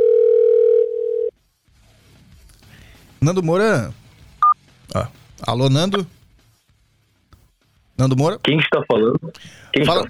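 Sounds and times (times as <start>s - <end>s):
telephone ringback tone while placing a call: 0.0s - 1.3s
speech: 3.2s - 4.0s, 4.9s - 6.2s, 8.0s - 10.0s.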